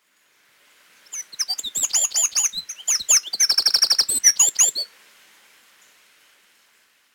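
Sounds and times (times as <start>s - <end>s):
wren Troglodytes troglodytes singing: 1.1s - 4.8s.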